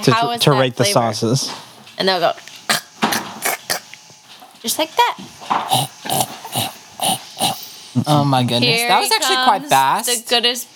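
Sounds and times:
speech: 0.0s - 2.5s, 4.6s - 10.7s
dog making grunting vocal noises: 2.7s - 3.9s, 5.6s - 7.7s.

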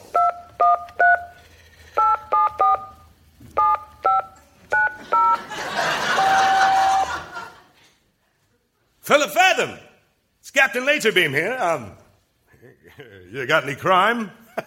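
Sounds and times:
telephone keypad dialing tones: 0.1s - 1.4s, 2.0s - 5.4s
laughter: 5.0s - 8.0s
speech: 9.1s - 9.8s, 10.6s - 12.0s, 12.9s - 14.4s.

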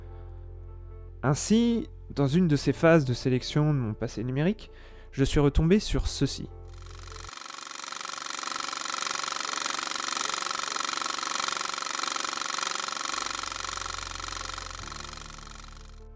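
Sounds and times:
speech: 1.2s - 6.6s
reel-to-reel film projector whirring and clattering: 6.7s - 16.1s.

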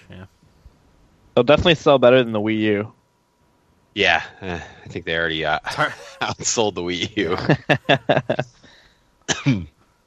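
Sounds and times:
speech: 0.1s - 0.5s, 1.4s - 3.0s, 4.0s - 8.6s, 9.4s - 9.7s
laughter: 5.6s - 8.4s
harsh coughs: 9.3s - 9.7s.

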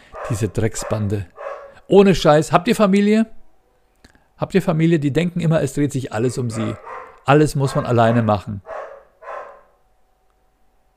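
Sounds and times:
dog barking: 0.0s - 1.8s, 6.2s - 9.8s
speech: 0.3s - 3.4s, 4.4s - 8.7s.

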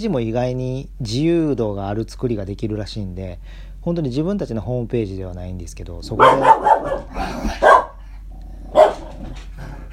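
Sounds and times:
speech: 0.0s - 7.7s
low hum: 0.0s - 9.9s
dog barking: 6.1s - 8.0s, 8.7s - 9.2s.

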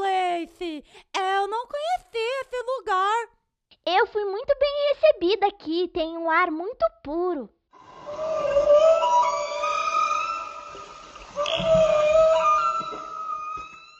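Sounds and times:
speech: 0.6s - 8.7s
male humpback whale singing at a marine national park in Bahia Brazil: 7.8s - 13.9s.

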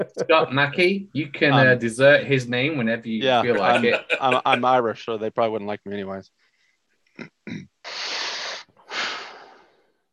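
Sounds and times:
speech: 0.0s - 6.4s, 7.2s - 8.0s
laughter: 3.5s - 4.7s
throat clearing: 7.2s - 7.7s.

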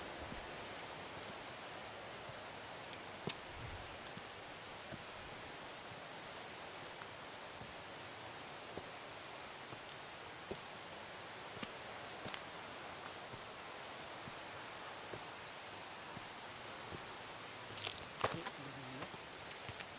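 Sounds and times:
wind and rustling leaves on an autumn mountainside: 0.0s - 19.9s
small dry crackles and snaps: 17.7s - 18.6s, 19.4s - 19.9s.

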